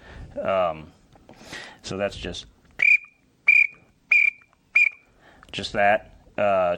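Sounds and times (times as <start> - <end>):
speech: 0.4 - 2.6, 5.5 - 6.7
pintail duck whistle call being blown: 2.8 - 5.0.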